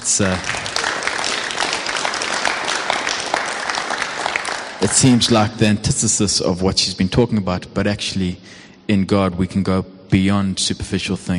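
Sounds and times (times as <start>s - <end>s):
congregation applauding: 0.0s - 5.5s
speech: 0.1s - 0.7s, 4.8s - 11.3s.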